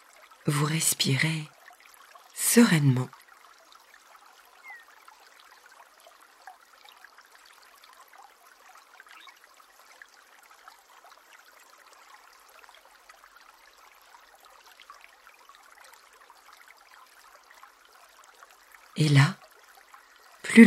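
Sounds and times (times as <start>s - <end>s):
small stream flowing: 0.0s - 20.6s
speech: 0.4s - 1.5s, 2.5s - 3.2s.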